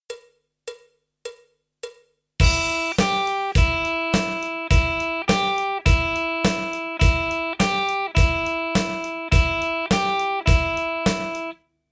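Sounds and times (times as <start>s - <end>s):
blues-rock lick on electric guitar: 2.4s - 11.6s.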